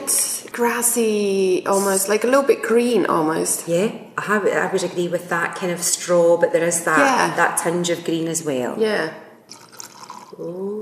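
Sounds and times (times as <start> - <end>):
speech: 0.6 - 9.2, 10.4 - 10.8
Lagg whisky straight from the cask pouring from a sample bottle into a glass: 9.5 - 10.5.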